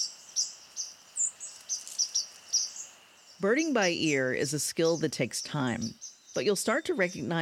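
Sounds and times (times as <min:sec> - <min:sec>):
soft outdoor hiss: 0:00.0 - 0:07.4
white-throated sparrow call notes: 0:00.0 - 0:07.4
speech: 0:03.4 - 0:07.4.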